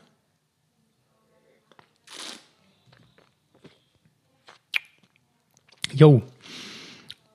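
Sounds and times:
person slurping wine while tasting: 2.1s - 2.5s
lip smacks and clicks while tasting wine: 4.5s - 6.0s, 7.0s - 7.3s
speech: 6.0s - 6.3s.

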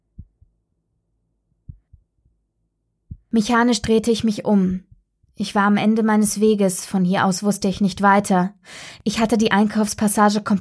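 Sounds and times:
heartbeat thumping in low pairs: 0.0s - 0.6s, 1.7s - 2.4s, 3.1s - 3.4s, 4.7s - 5.2s
speech: 3.3s - 10.5s.

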